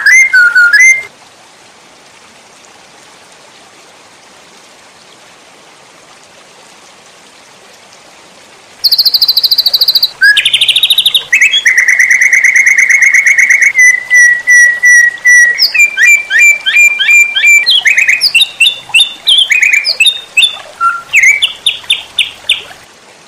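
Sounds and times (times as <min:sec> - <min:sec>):
White-rumped shama song: 0:00.0 - 0:01.1, 0:08.8 - 0:22.8.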